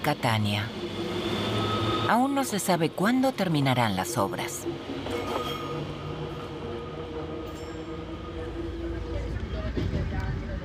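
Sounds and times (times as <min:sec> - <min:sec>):
speech: 0:00.0 - 0:00.9, 0:02.1 - 0:06.0
old Fiat train engine drone: 0:00.0 - 0:10.6.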